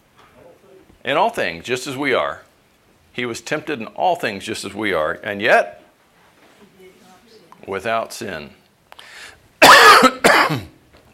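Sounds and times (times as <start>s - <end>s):
speech: 1.0s - 2.5s, 3.2s - 5.8s, 7.6s - 8.6s
faint breathy sound: 8.9s - 9.5s
person coughing harshly: 9.6s - 10.8s.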